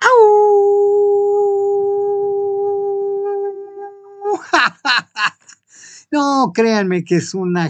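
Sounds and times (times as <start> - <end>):
person imitating an energetic howl: 0.0 - 4.6
laughter: 4.3 - 5.5
speech: 6.1 - 7.6.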